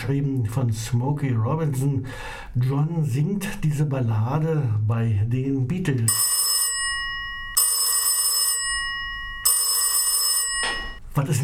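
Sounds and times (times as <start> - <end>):
speech: 0.1 - 6.3, 11.2 - 11.4
telephone ringing in loud, bright bursts: 6.1 - 11.0.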